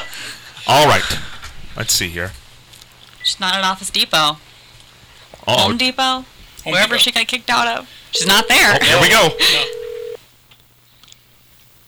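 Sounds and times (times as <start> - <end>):
speech: 0.7 - 2.4, 3.3 - 4.5, 5.5 - 9.8
faint brief blips: 8.0 - 10.2
touch-tone beep of a telephone number being dialed: 8.2 - 10.2.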